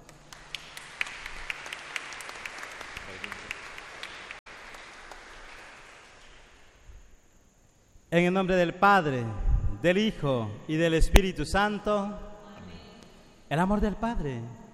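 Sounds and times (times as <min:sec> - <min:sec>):
audience at Mass applauding in a church for a birthday: 0:00.0 - 0:06.8
speech: 0:08.1 - 0:12.3, 0:13.5 - 0:14.6.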